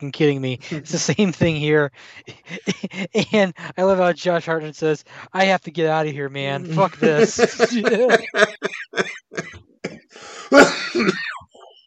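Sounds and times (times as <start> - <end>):
speech: 0.0 - 11.4
raspy coughing: 0.6 - 1.1, 2.2 - 4.0, 6.6 - 11.7
laughter: 0.6 - 5.0, 6.4 - 9.6, 10.4 - 11.2
quiet breathing: 2.0 - 2.4, 5.0 - 5.4, 10.1 - 10.6
throat clearing: 2.3 - 3.7, 6.7 - 11.5.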